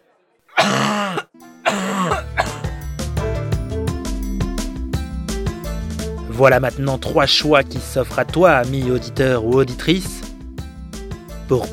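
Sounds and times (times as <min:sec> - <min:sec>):
steady musical backdrop: 0:00.0 - 0:11.7
man giving strained throaty coughs: 0:00.5 - 0:02.8
speech: 0:06.4 - 0:10.3, 0:11.5 - 0:11.7.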